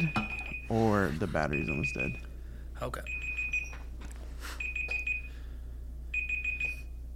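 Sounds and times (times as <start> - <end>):
timer alarm beeping: 0.0 - 2.4, 3.0 - 3.9, 4.6 - 5.4, 6.1 - 7.0
speech: 0.0 - 3.2
low steady hum: 0.0 - 7.1.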